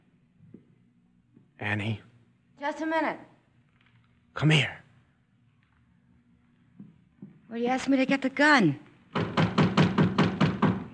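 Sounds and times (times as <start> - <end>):
speech: 1.6 - 3.3, 4.4 - 4.8, 7.5 - 8.8
knocking on a back door: 9.1 - 10.9.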